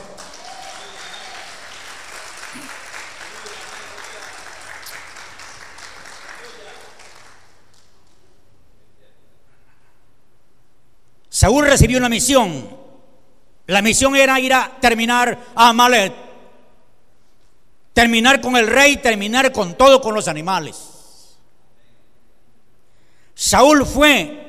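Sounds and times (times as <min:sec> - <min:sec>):
crowd at a religious service applauding: 0:00.0 - 0:08.3
speech: 0:11.4 - 0:12.8, 0:13.7 - 0:16.2, 0:18.0 - 0:20.9, 0:23.4 - 0:24.4.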